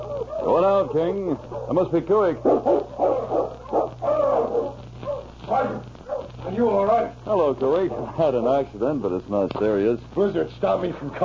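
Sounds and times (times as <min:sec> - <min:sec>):
team of sled dogs barking and yipping: 0:00.0 - 0:06.3
speech: 0:00.4 - 0:03.0, 0:07.5 - 0:11.2.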